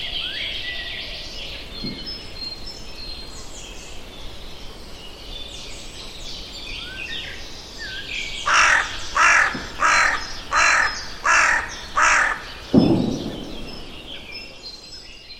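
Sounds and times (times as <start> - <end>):
constant background hiss: 0.0 - 15.3
thump and rustle: 1.8 - 2.3, 12.7 - 13.7
bird cawing: 8.4 - 13.6.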